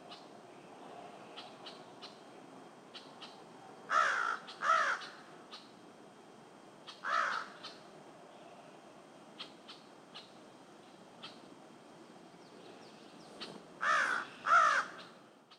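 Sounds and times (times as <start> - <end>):
low background hiss: 0.0 - 15.5
crow cawing: 3.9 - 5.6, 6.9 - 7.8, 13.8 - 15.2.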